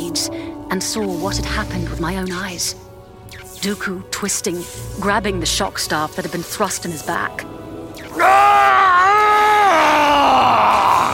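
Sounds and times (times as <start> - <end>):
speech: 0.2 - 7.6, 8.2 - 10.8
man screaming in rage: 8.2 - 11.1.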